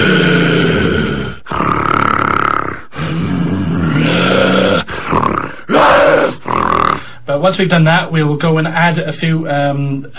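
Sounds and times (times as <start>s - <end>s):
man voicing a deep guttural werewolf growl in a sound booth: 0.0s - 7.2s
man breathing: 2.8s - 3.7s, 4.8s - 5.7s, 6.9s - 7.3s
speech: 7.4s - 10.1s.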